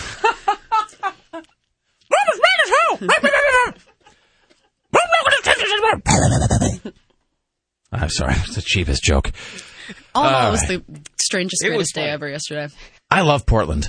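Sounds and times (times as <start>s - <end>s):
person imitating a dog with yapping barks and howly yelps: 2.1s - 3.8s, 4.9s - 6.9s
speech: 3.0s - 3.8s, 8.1s - 13.8s.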